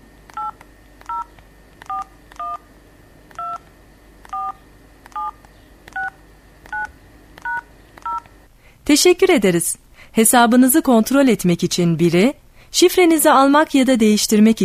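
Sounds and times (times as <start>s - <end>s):
telephone keypad DTMF tones keying an account number: 0.3s - 2.6s, 3.4s - 3.7s, 4.3s - 8.3s
speech: 8.9s - 14.6s.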